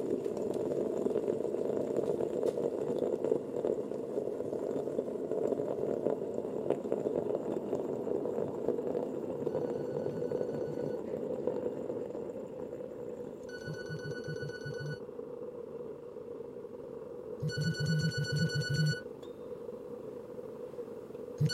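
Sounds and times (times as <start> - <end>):
low hum: 0.0 - 21.5
telephone ringing with electronic trilling: 9.4 - 11.1, 13.5 - 15.0, 17.4 - 19.0, 21.4 - 21.5.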